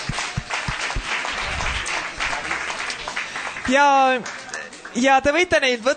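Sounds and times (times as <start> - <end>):
audience applauding with dense steady clapping: 0.0 - 5.2
speech: 3.7 - 5.9.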